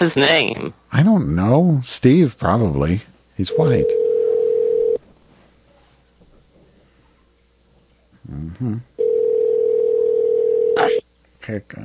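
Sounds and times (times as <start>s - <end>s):
speech: 0.0s - 4.0s, 8.3s - 8.9s, 11.4s - 11.8s
phone line electronic ringback tone: 3.5s - 5.0s, 9.0s - 11.0s.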